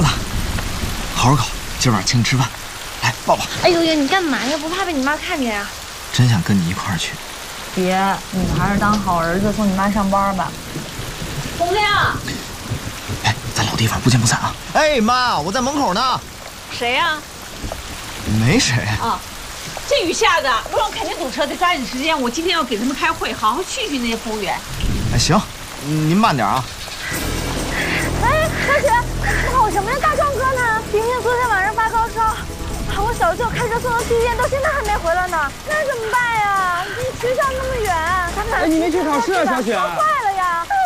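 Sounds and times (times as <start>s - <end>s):
thunder rumbling: 0.0s - 6.0s, 7.6s - 40.8s
heavy rain: 0.0s - 40.8s
speech: 1.2s - 10.6s, 11.6s - 12.3s, 13.8s - 17.3s, 18.3s - 19.3s, 19.9s - 27.2s, 28.6s - 40.8s.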